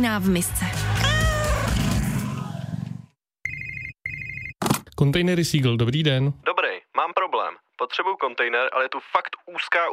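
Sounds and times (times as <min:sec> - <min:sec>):
speech: 0:00.0 - 0:00.9, 0:05.0 - 0:09.9
cat meowing: 0:00.9 - 0:01.8
bright electronic phone-ringing tone: 0:03.4 - 0:04.6.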